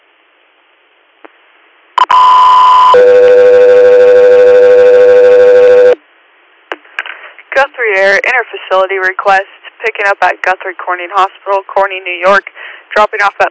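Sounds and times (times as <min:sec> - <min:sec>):
faint radio static: 0:00.0 - 0:13.4
radio dispatch alert tones for an air medical transport request: 0:02.0 - 0:06.0
speech: 0:08.0 - 0:13.4.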